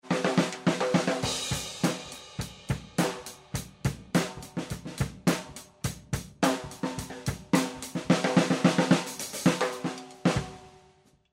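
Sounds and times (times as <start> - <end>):
drum kit overhead microphone recording: 0.0 - 10.8.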